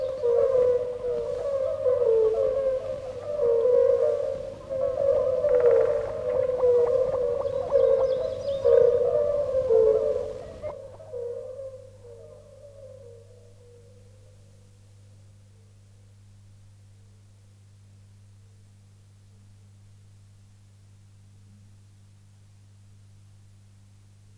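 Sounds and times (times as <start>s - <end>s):
European fire-bellied toads hooting: 0.0s - 14.2s.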